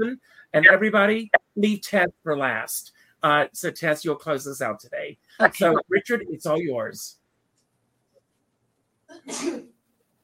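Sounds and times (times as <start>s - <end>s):
speech: 0.0s - 7.2s, 9.1s - 9.7s
person sneezing: 9.1s - 9.7s.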